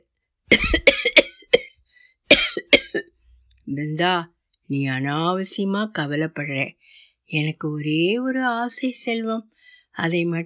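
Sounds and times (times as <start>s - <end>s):
harsh hacking coughing fit: 0.5s - 3.1s
speech: 3.8s - 10.4s.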